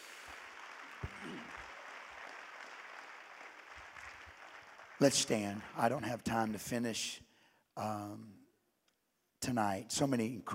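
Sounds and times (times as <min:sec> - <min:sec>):
audience clapping hands: 0:00.0 - 0:05.9
speech: 0:05.0 - 0:07.2, 0:07.8 - 0:08.4, 0:09.4 - 0:10.5.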